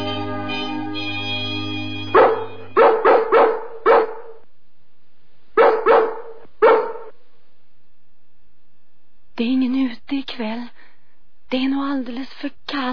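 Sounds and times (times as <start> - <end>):
dogs barking: 2.1 - 4.5, 5.6 - 7.1
speech: 11.5 - 12.9.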